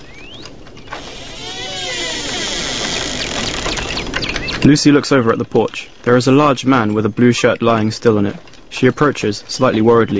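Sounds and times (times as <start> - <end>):
shed door squeaking slowly open: 0.3 - 4.8
speech: 4.6 - 10.1.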